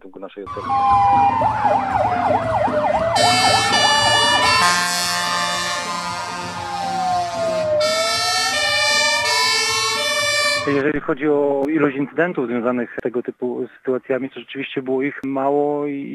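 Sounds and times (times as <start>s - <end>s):
speech: 0.0s - 3.6s, 10.6s - 16.1s
fire engine siren yelp and wail: 0.5s - 10.8s
fire engine air horn blasts: 3.2s - 10.8s.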